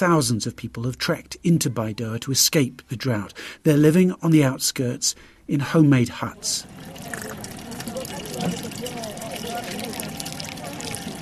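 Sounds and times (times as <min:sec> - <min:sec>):
speech: 0:00.0 - 0:07.5
water pouring into yellow jerry cans at a camp water point: 0:06.3 - 0:11.2
murmur of a big crowd of mostly women: 0:06.6 - 0:11.2.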